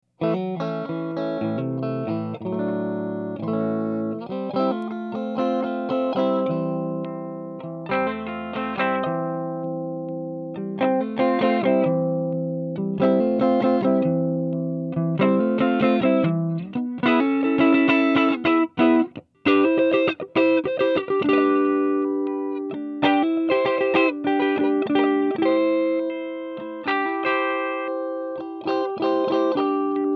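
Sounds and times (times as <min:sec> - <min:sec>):
raw Strat electric guitar through amps at volume 12 o'clock: 0:00.2 - 0:30.1.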